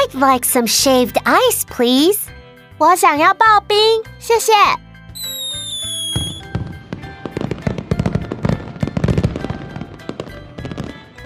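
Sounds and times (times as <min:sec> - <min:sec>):
speech: 0:00.1 - 0:04.8
short high tonal chime: 0:05.2 - 0:06.4
fireworks display bangs and crackles: 0:05.2 - 0:11.2.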